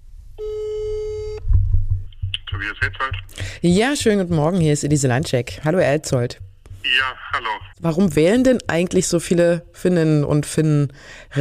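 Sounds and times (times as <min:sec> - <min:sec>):
telephone ringing tone while a call is placed: 0:00.4 - 0:01.4
low thumps: 0:01.4 - 0:09.4
speech: 0:02.6 - 0:11.4.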